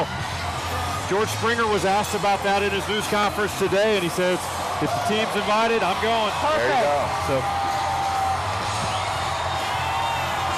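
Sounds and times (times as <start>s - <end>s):
large outdoor parade crowd roaring and cheering: 0.0s - 10.5s
speech: 1.1s - 7.7s
parade crowd yells and whoops at a passing fire truck: 4.6s - 10.5s.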